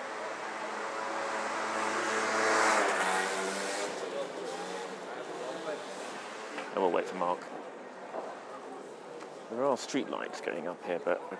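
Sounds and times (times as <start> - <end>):
motorbike engine approaching and passing: 0.0 - 6.7
steady outdoor noise: 0.0 - 11.3
speech: 6.8 - 7.7, 9.5 - 11.3.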